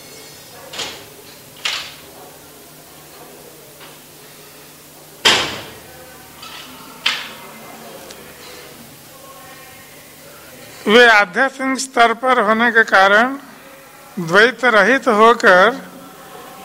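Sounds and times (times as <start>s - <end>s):
door and window being shut: 5.2s - 5.8s
speech: 10.9s - 13.5s, 14.2s - 15.9s.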